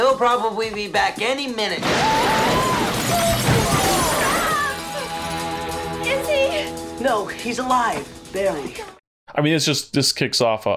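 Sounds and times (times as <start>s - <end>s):
speech: 0.2s - 4.0s, 6.0s - 10.7s
glass window shattering: 1.8s - 4.8s.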